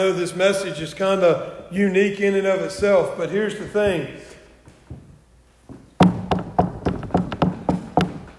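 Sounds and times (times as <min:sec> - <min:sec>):
speech: 0:00.0 - 0:04.3
knocking on a wooden surface: 0:06.0 - 0:08.3.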